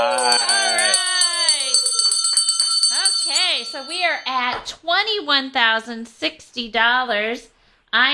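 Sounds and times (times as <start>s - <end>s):
hand bell ringing: 0.0s - 4.3s
speech: 3.8s - 8.1s.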